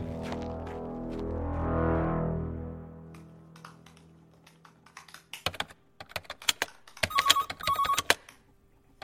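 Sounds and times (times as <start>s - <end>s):
low harmonic tone: 0.0s - 4.2s
mobile phone ringing from a hidden-number call: 7.0s - 8.1s.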